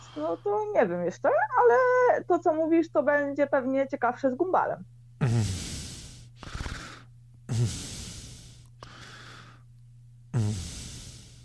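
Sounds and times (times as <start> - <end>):
speech: 0.2 - 5.6, 7.6 - 7.8
heavy breathy panting: 5.2 - 9.6, 10.4 - 11.4.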